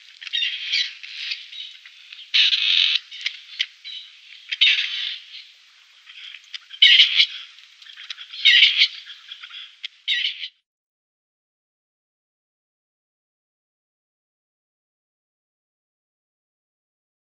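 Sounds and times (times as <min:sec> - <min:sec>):
grey partridge giving rasping display calls: 0:00.0 - 0:10.6.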